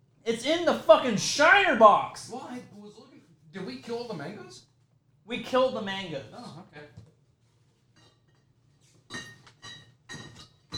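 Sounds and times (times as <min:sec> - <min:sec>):
faint hum: 0:00.0 - 0:10.7
speech: 0:00.2 - 0:02.8, 0:03.6 - 0:04.7, 0:05.3 - 0:07.1
glass clinking: 0:09.1 - 0:10.7.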